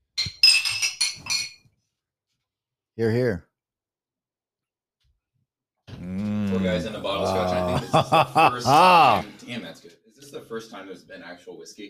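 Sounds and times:
glasses clinking in a toast: 0:00.2 - 0:01.6
speech: 0:03.0 - 0:03.5, 0:06.6 - 0:11.8
laughter: 0:06.3 - 0:09.4.

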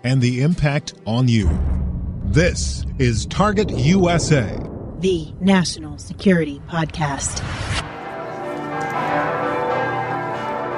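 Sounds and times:
speech: 0:00.0 - 0:07.9
church bells pealing at a Catholic church on a city square: 0:08.1 - 0:10.7.

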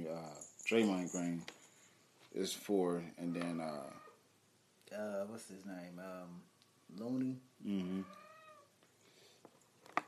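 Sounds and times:
speech: 0:00.2 - 0:01.6, 0:02.3 - 0:04.0, 0:04.9 - 0:08.2
cat meowing: 0:07.8 - 0:08.7.

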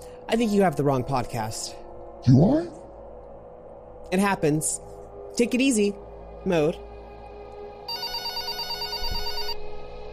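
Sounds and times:
speech: 0:00.3 - 0:02.8, 0:04.1 - 0:06.9
telephone ringing: 0:07.9 - 0:09.6.

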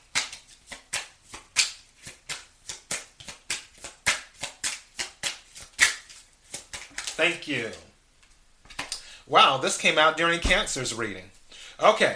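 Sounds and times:
tarot cards being shuffled and dealt: 0:00.0 - 0:07.8
speech: 0:07.2 - 0:07.9, 0:09.3 - 0:12.1.

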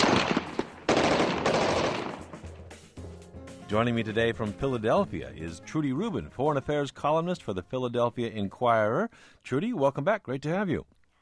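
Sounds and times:
rapid gunfire bursts: 0:00.0 - 0:02.5
speech: 0:03.7 - 0:11.0.

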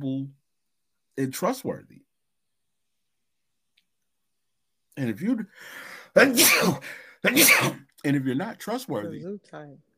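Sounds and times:
speech: 0:00.0 - 0:00.4, 0:01.2 - 0:02.1, 0:05.0 - 0:09.9
sneeze: 0:06.2 - 0:07.9.

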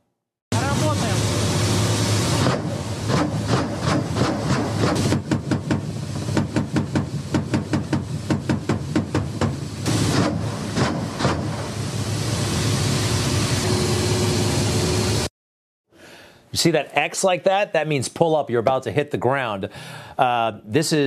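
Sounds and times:
Russian attack helicopter engine roaring in combat: 0:00.5 - 0:15.3
rapid bursts of fire from an attack helicopter: 0:02.4 - 0:11.7
speech: 0:16.6 - 0:21.0.

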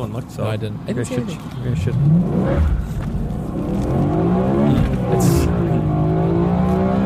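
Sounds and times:
speech: 0:00.0 - 0:03.9
high-revving V8 engine roaring heard from inside the car: 0:01.8 - 0:07.0.

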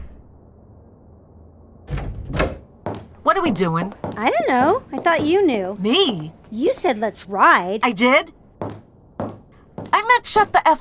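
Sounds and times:
front door slamming shut with wooden bangs: 0:01.8 - 0:02.7
speech: 0:03.3 - 0:08.4, 0:10.1 - 0:10.7.

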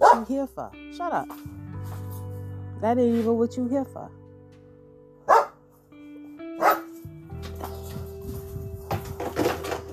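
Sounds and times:
dog barking: 0:00.0 - 0:00.3, 0:05.2 - 0:05.6, 0:06.6 - 0:06.9
speech: 0:00.0 - 0:02.0, 0:02.8 - 0:04.2.

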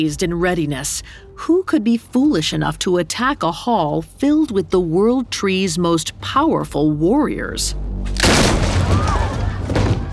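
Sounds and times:
speech: 0:00.0 - 0:08.2
loud sustained rumbling crash of doors bursting open: 0:08.0 - 0:10.1
doors bursting open: 0:08.1 - 0:10.1.

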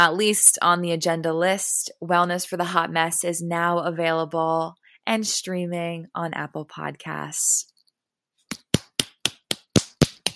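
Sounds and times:
speech: 0:00.0 - 0:07.7
sharp hand claps: 0:08.5 - 0:10.3.

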